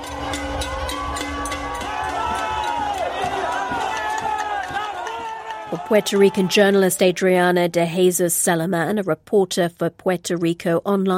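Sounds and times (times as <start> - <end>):
large outdoor crowd of protesters celebrating, shouting and chattering: 0.0 - 7.4
claps: 0.1 - 7.0
speech: 5.7 - 11.1.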